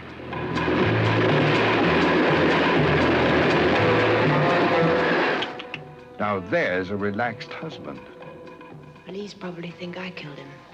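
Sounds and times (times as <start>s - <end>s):
train in motion rumbling with a low pulsing drone: 0.0s - 5.6s
speech: 6.4s - 8.2s, 9.1s - 10.6s.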